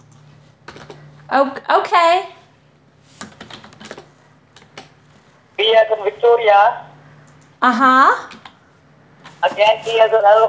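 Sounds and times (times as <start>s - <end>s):
speech: 0.9s - 2.4s, 5.6s - 6.9s, 7.6s - 8.4s, 9.4s - 10.4s
typing on a computer keyboard into a run box: 3.2s - 4.9s, 8.3s - 8.6s.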